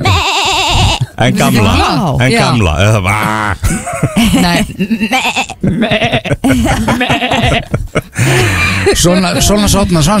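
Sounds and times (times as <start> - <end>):
person imitating a lamb bleating: 0.0 - 2.0, 3.0 - 3.7, 4.5 - 7.7
speech: 1.2 - 10.1
laughter: 3.2 - 9.4.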